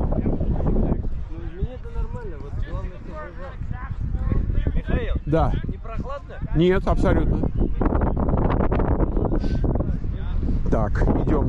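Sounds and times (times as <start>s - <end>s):
strong wind buffeting outdoors near water: 0.0s - 11.4s
speech: 5.3s - 5.7s, 6.6s - 7.5s, 10.8s - 11.4s.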